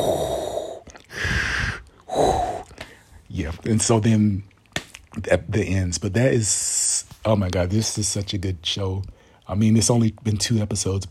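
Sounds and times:
voice imitating a masked villain's mechanical respirator breathing: 0:00.0 - 0:02.8
speech: 0:03.7 - 0:04.5, 0:05.2 - 0:11.0.

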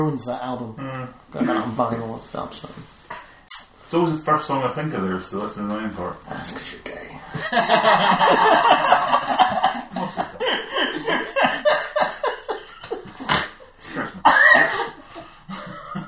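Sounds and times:
speech: 0:00.0 - 0:03.0, 0:03.9 - 0:09.6
laughter: 0:07.3 - 0:16.0
person choking into a fit of coughing: 0:13.2 - 0:15.0
person snorting: 0:13.2 - 0:15.3.

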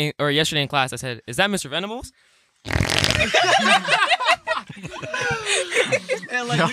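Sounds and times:
speech: 0:00.0 - 0:06.7
raspberry blown with the lips mimicking a fart: 0:02.6 - 0:03.3
people chuckling and giggling: 0:03.1 - 0:06.7.

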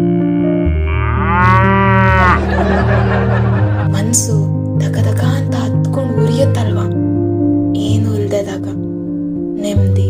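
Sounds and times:
buffalo mooing: 0:00.0 - 0:02.5
musical backing: 0:00.0 - 0:10.0
laughter: 0:02.2 - 0:04.1
speech: 0:04.1 - 0:05.1.

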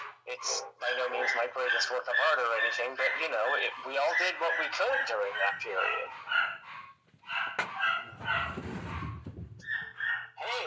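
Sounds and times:
dogs barking and yipping excitedly: 0:00.0 - 0:10.6
speech: 0:00.4 - 0:06.6
rustling and shuffling noise: 0:06.8 - 0:09.9.

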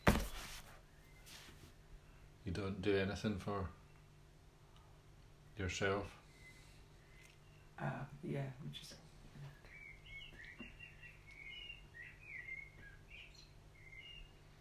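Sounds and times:
low hum: 0:00.0 - 0:14.5
speech: 0:02.5 - 0:03.8, 0:05.6 - 0:06.2, 0:07.8 - 0:09.6
birds chirping outdoors: 0:05.8 - 0:08.2, 0:08.8 - 0:14.5.

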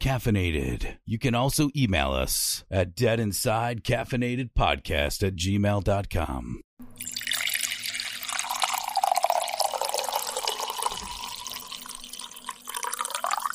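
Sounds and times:
speech: 0:00.0 - 0:07.1
coffee being poured into a cup: 0:07.0 - 0:13.5.

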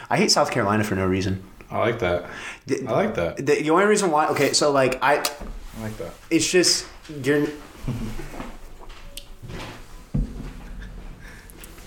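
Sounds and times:
speech: 0:00.1 - 0:08.6
door thumping against something: 0:10.1 - 0:10.6.

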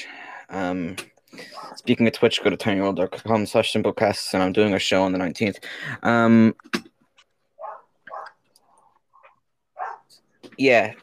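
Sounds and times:
speech: 0:00.5 - 0:01.1, 0:01.7 - 0:06.8, 0:10.6 - 0:11.0
dog barking: 0:01.5 - 0:01.8, 0:07.6 - 0:08.4, 0:09.8 - 0:10.1.

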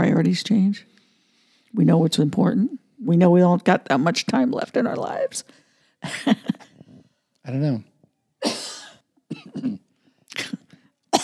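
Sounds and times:
speech: 0:00.0 - 0:01.0, 0:01.7 - 0:06.7, 0:07.5 - 0:08.6, 0:09.5 - 0:09.8
person coughing harshly: 0:08.4 - 0:11.2.

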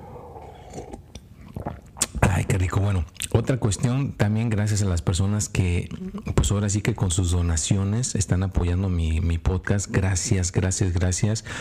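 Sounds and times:
sipping coffee: 0:00.0 - 0:02.3
slurp and swallow of coffee: 0:00.2 - 0:02.4
speech: 0:02.6 - 0:11.5.

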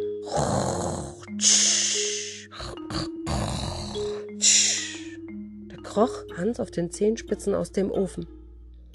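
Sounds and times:
loud rumbling snores with snorting grunts: 0:00.2 - 0:05.1
speech: 0:01.4 - 0:01.7, 0:06.0 - 0:08.4.

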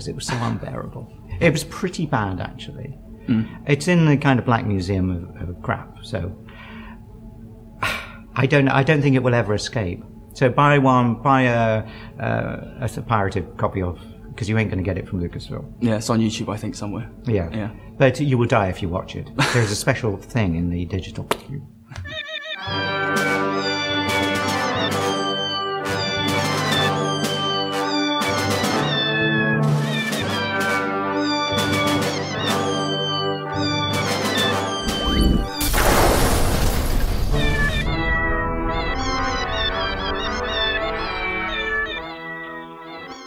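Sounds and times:
speech: 0:00.0 - 0:06.4, 0:07.8 - 0:22.9
several cats meowing and yowling: 0:22.0 - 0:35.6, 0:37.4 - 0:43.2
noisy crash or clatter: 0:35.6 - 0:37.7.

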